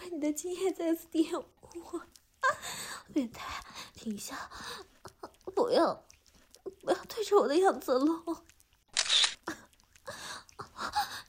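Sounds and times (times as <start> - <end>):
speech: 0.1 - 4.9, 5.5 - 8.6
camera shutter clicks taking photos: 8.9 - 9.5.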